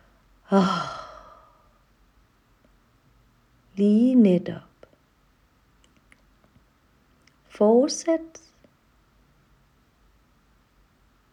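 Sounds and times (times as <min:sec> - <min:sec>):
speech: 0:00.5 - 0:00.9, 0:03.8 - 0:04.7, 0:07.6 - 0:08.5
voiced releasing exhale during a guided breathing exercise: 0:00.5 - 0:01.7.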